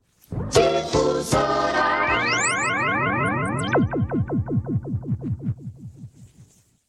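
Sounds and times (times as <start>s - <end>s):
radio jingle: 0.4s - 5.8s.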